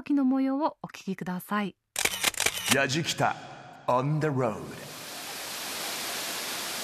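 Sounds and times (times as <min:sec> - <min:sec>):
speech: 0:00.0 - 0:01.8, 0:02.7 - 0:04.9
rushing mountain river water: 0:04.9 - 0:06.8.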